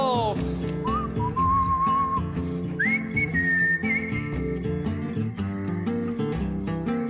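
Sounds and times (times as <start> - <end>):
steady instrumental backing music: 0.0 - 7.0
whistled melody: 0.8 - 5.1.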